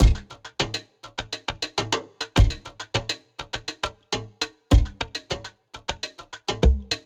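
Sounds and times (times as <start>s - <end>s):
drum groove at 102 bpm: 0.0s - 7.0s.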